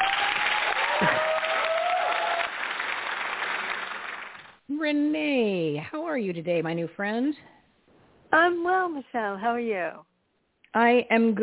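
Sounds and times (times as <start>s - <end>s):
studio audience whoops and cheers: 0.0s - 2.6s
studio audience applause: 0.0s - 4.6s
speech: 4.9s - 7.5s, 8.3s - 10.1s, 10.7s - 11.4s.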